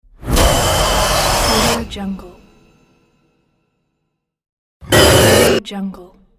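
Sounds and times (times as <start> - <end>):
horror dramatic demon scream: 0.4 - 1.9, 4.8 - 5.6.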